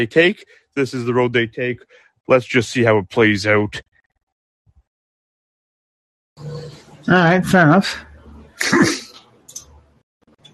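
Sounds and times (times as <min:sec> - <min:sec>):
speech: 0:00.0 - 0:03.9, 0:06.4 - 0:09.0
sharp breathy sneeze: 0:08.6 - 0:09.2.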